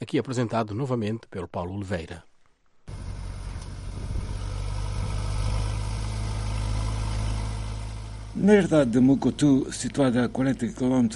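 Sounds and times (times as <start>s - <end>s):
speech: 0.1s - 2.3s, 8.4s - 11.1s
tractor engine preparing farmland: 2.9s - 11.1s.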